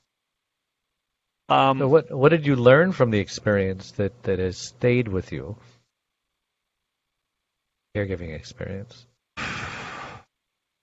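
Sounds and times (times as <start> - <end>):
speech: 1.5 - 5.7, 8.0 - 9.1
person taking deep breath mid-conversation: 9.4 - 10.3.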